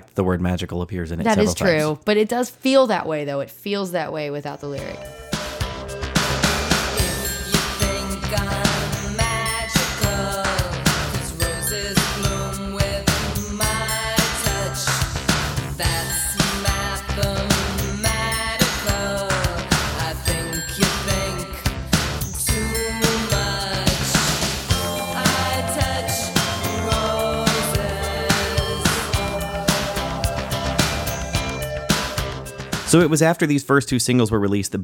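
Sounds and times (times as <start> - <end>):
speech: 0.2 - 5.2, 32.9 - 34.8
driving pop beat with layered synths: 1.3 - 2.0, 4.9 - 33.2
bright chiming bells in a pop song: 4.8 - 14.8, 20.1 - 32.7.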